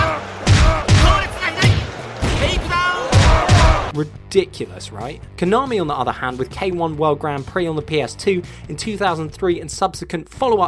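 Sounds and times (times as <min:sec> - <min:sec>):
video game gunshot sound effects: 0:00.0 - 0:03.9
voices and crowd noise: 0:00.0 - 0:03.9
speech: 0:04.0 - 0:10.6.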